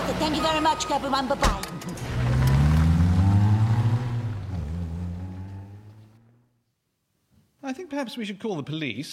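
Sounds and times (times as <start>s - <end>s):
speech: 0.2s - 2.1s, 7.7s - 9.1s
heavy flatbed truck engine revving while backing up: 1.0s - 6.5s.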